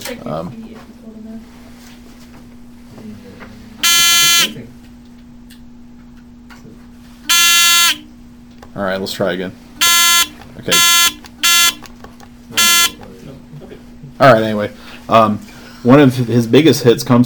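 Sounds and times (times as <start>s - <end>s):
low steady hum: 0.0s - 17.2s
speech: 0.1s - 0.9s, 4.4s - 4.8s, 8.8s - 9.6s, 10.6s - 11.1s, 14.2s - 17.2s
quiz game buzzer being tested: 3.8s - 4.6s, 7.3s - 8.1s, 9.8s - 13.1s.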